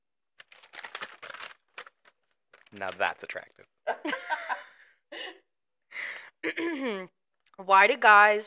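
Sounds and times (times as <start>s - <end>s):
paper rustling and crinkling while being handled: 0.4s - 3.5s
speech: 2.7s - 4.5s, 6.4s - 8.4s.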